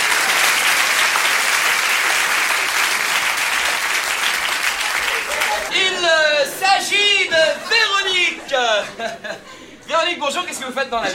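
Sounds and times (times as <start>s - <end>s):
large audience applause: 0.0s - 5.8s
faint crowd noise: 0.0s - 11.1s
laughter: 4.8s - 6.1s, 7.2s - 9.9s
speech: 6.9s - 11.1s.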